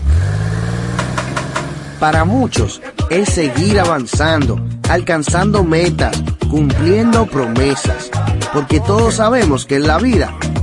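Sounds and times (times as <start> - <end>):
car engine starting and revving: 0.0 - 2.8
speech: 2.0 - 10.6.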